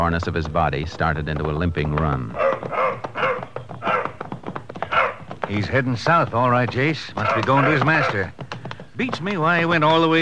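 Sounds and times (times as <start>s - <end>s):
speech: 0.0s - 3.1s, 5.5s - 8.4s, 9.0s - 10.2s
small taps: 0.2s - 10.2s
dog barking and yipping: 2.4s - 4.2s, 4.9s - 5.3s.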